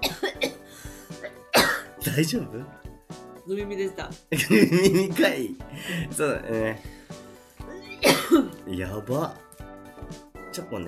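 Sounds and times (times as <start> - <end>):
throat-clearing coughs: 0.0 - 2.0, 7.8 - 8.6
speech: 2.0 - 2.8, 3.5 - 7.0, 8.3 - 9.4, 10.6 - 10.8
laughter: 4.4 - 5.2.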